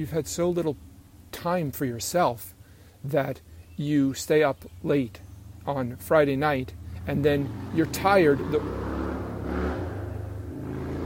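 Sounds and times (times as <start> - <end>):
speech: 0.0 - 8.9
motorcycle engine revving outdoors: 6.7 - 11.0.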